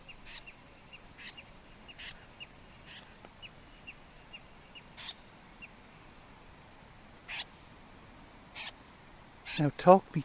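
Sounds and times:
steady hiss of night-time noise: 0:00.0 - 0:10.2
migratory snipe giving rasping calls in flight at night: 0:01.2 - 0:02.2, 0:05.0 - 0:05.2, 0:07.3 - 0:07.5, 0:08.6 - 0:08.8, 0:09.4 - 0:09.7
speech: 0:09.6 - 0:10.2.

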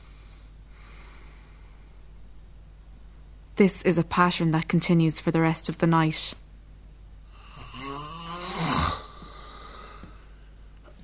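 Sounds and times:
faint steady low hum: 0:00.0 - 0:11.0
speech: 0:03.6 - 0:06.4
sleeper snorting and snoring as breathing resumes: 0:07.4 - 0:10.1.

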